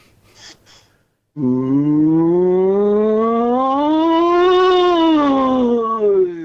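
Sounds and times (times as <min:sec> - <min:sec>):
breathy noise: 0:00.0 - 0:02.0
caller imitating a cow with a drawn-out moo: 0:01.4 - 0:06.4.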